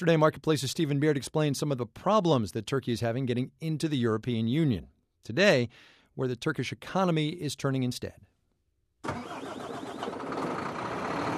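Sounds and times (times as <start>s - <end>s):
speech: 0.0s - 8.3s
heavy truck engine rumbling at a truck depot in northwest Turkey: 9.1s - 11.3s.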